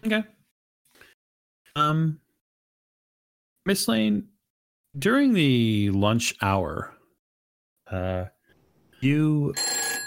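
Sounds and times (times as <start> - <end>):
speech: 0.0 - 0.4, 1.8 - 2.2, 3.6 - 4.3, 5.0 - 7.0, 7.9 - 8.4, 9.0 - 10.0
telephone ringing: 9.5 - 10.0.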